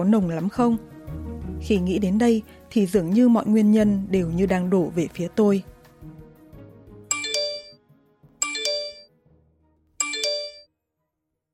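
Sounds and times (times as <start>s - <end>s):
speech: 0.0s - 0.9s, 1.6s - 5.7s
phone text message notification chime: 7.1s - 7.8s, 8.4s - 9.1s, 10.0s - 10.7s.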